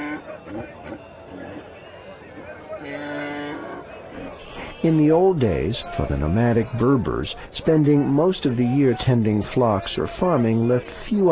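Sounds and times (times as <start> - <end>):
sustained drawn-out animal cry: 0.0 - 5.2
livestock calls at a hillside animal market: 0.0 - 7.4
murmur of many voices at a hillside animal market: 0.0 - 11.3
speech: 4.8 - 11.3.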